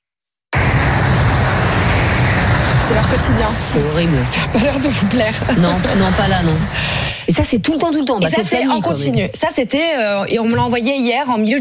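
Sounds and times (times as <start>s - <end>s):
heavy motorway traffic roar at Rive-de-Gier in the Loire, France: 0.6s - 7.3s
speech: 2.9s - 11.5s.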